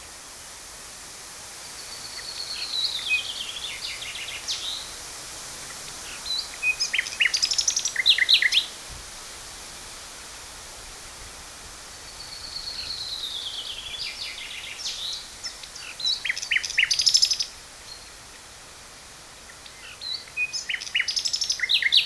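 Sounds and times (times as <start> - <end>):
common nightingale Luscinia megarhynchos singing: 1.8 - 5.0, 5.7 - 8.8, 12.0 - 18.2, 19.5 - 22.0.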